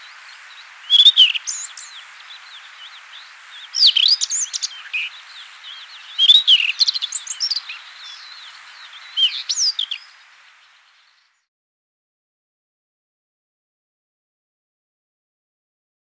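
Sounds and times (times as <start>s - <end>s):
Rufous-tailed Scrub Robin singing: 0.0s - 11.3s.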